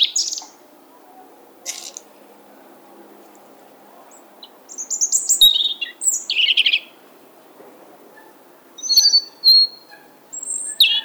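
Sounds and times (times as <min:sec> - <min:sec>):
European robin Erithacus rubecula singing: 0:00.0 - 0:00.6, 0:01.6 - 0:02.1, 0:04.0 - 0:07.1, 0:08.7 - 0:11.0.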